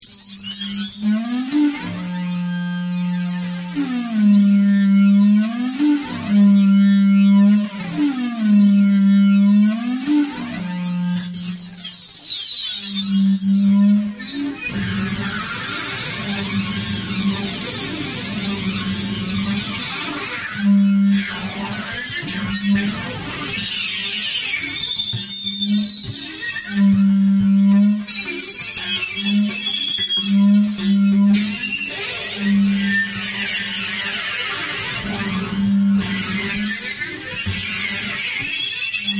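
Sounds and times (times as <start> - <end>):
industrial feedback noise: 0.0 - 39.1.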